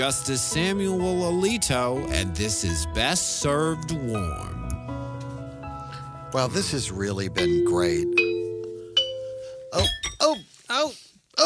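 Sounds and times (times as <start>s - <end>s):
speech: 0.0s - 4.6s, 6.3s - 8.2s, 9.7s - 10.0s
bright chime ringing: 7.4s - 10.6s.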